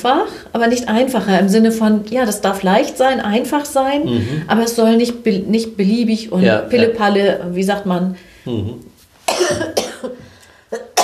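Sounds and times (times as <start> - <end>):
speech: 0.0 - 10.2
person coughing harshly: 4.0 - 4.4, 9.3 - 11.0.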